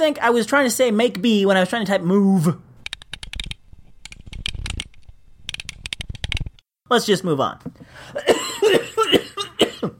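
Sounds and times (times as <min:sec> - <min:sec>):
speech: 0:00.0 - 0:02.6, 0:06.9 - 0:08.3
person coughing harshly: 0:08.2 - 0:09.9.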